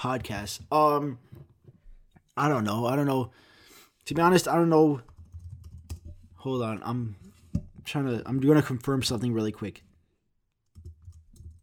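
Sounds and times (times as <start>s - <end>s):
speech: 0.0s - 1.4s, 2.4s - 5.1s, 6.4s - 7.3s, 7.9s - 9.9s
computer keyboard typing: 5.0s - 6.2s, 10.6s - 11.6s.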